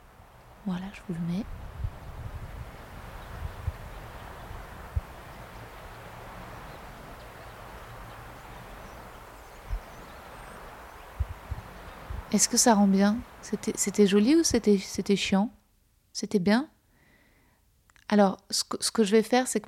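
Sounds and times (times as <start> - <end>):
wind rushing through trees: 0.0 - 19.6
speech: 0.6 - 1.7, 12.4 - 15.6, 16.2 - 16.7, 18.1 - 19.6
soft thumps of wind against the microphone: 1.4 - 5.9, 9.6 - 10.2, 11.1 - 12.4
faint bird chirps: 3.0 - 14.2.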